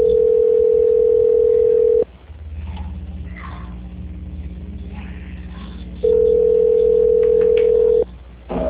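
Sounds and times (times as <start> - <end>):
telephone line tones during a call transfer: 0.0 - 2.1, 6.0 - 8.1
low telephone line hum and hiss: 0.0 - 8.6.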